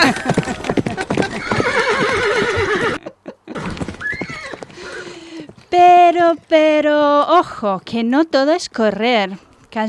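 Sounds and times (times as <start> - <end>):
horses galloping: 0.0 - 7.9
horse neighing: 1.2 - 5.2
speech: 6.3 - 9.8.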